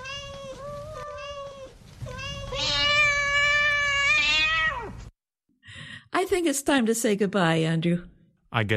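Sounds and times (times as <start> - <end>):
cat meowing and yowling: 0.0 - 5.1
speech: 6.2 - 8.7.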